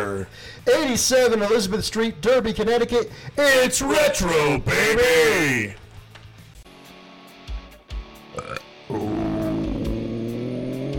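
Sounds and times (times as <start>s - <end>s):
speech: 0.2s - 5.8s
loud rumbling croaky burp into the microphone: 8.3s - 10.9s
short guttural noises: 8.3s - 10.9s.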